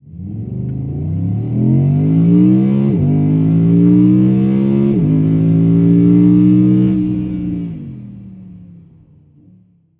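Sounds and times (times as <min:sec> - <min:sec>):
Audi R8 Spyder V10 quattro accelerating heard from inside: 0:00.0 - 0:09.6.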